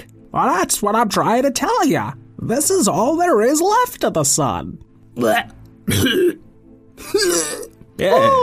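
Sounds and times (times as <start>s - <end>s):
speech: 0.3s - 6.4s, 8.0s - 8.4s
person's voice imitating a creature coughing up a hairball: 5.2s - 6.4s, 7.0s - 7.7s.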